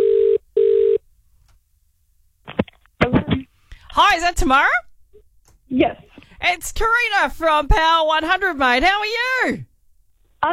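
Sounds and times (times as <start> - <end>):
telephone ringback tone heard through the line: 0.0 - 1.0
speech: 4.0 - 4.8, 5.7 - 9.7.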